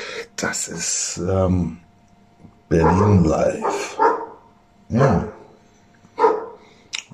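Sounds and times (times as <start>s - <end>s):
speech: 0.4s - 1.9s, 2.7s - 4.1s, 4.9s - 5.4s
dogs barking in a backyard: 2.7s - 6.7s.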